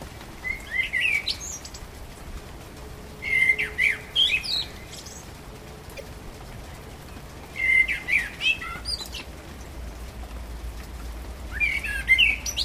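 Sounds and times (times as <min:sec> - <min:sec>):
common blackbird song: 0:00.4 - 0:01.9, 0:03.2 - 0:05.4, 0:07.1 - 0:09.4, 0:11.5 - 0:12.6.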